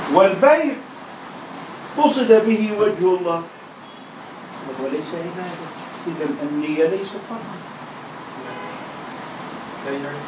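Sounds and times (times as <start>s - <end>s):
outdoor traffic noise: 0.0s - 10.2s
speech: 0.2s - 0.9s, 2.0s - 3.6s, 4.6s - 7.8s, 9.8s - 10.2s
short car horn toot: 8.5s - 8.9s.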